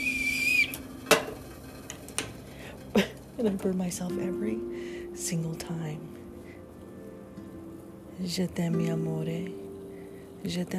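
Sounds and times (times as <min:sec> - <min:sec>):
teapot whistling: 0:00.0 - 0:01.1
speech: 0:03.0 - 0:06.2, 0:08.2 - 0:09.6, 0:10.4 - 0:10.7.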